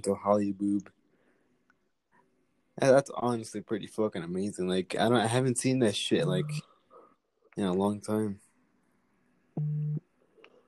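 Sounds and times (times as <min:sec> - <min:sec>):
speech: 0:00.0 - 0:01.0, 0:02.8 - 0:06.7, 0:07.6 - 0:08.4, 0:09.6 - 0:09.8
mobile phone vibrating: 0:09.6 - 0:10.0.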